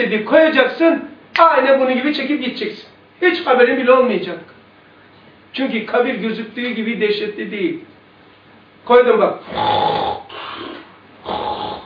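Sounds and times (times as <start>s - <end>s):
speech: 0.0s - 4.6s, 5.5s - 7.9s, 8.8s - 10.0s
person imitating a sleeping person's snoring: 9.4s - 11.8s.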